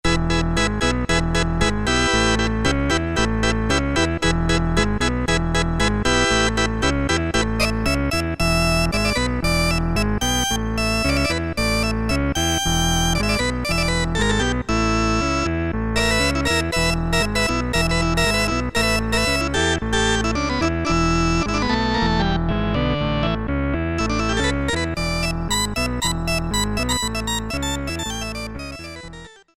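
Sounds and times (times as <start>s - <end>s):
cheesy organ sound on a synthesizer: 0.0s - 29.5s.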